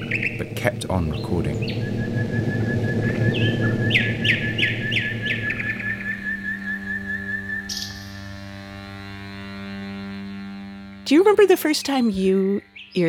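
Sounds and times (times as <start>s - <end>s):
nightingale singing: 0.0s - 8.3s, 12.3s - 13.0s
low droning hum: 0.0s - 12.9s
speech: 0.6s - 2.6s, 11.2s - 13.0s.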